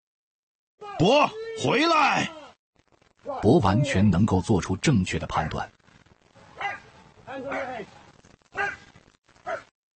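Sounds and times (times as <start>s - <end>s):
speech: 0.9s - 2.4s, 3.2s - 5.8s, 7.4s - 8.0s
large police dog barking: 6.6s - 6.9s, 8.6s - 9.7s.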